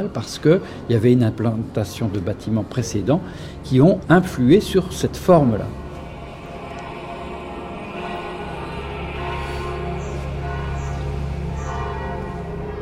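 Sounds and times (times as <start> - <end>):
speech: 0.0 - 5.8
church bells ringing before mass: 1.6 - 12.8
constant low hum: 3.2 - 12.8.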